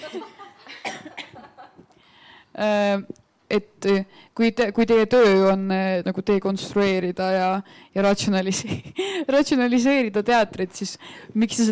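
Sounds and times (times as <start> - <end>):
laughter: 0.0 - 1.8
speech: 0.1 - 0.4, 2.6 - 11.6
short breathy coughs: 0.7 - 1.4.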